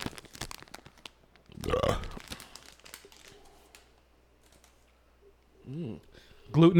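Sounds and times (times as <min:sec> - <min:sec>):
plastic bag of peanut butter puffs ripping open: 0:00.0 - 0:03.8
plastic bag of peanut butter puffs crinkling: 0:00.0 - 0:04.9
speech: 0:06.6 - 0:06.7.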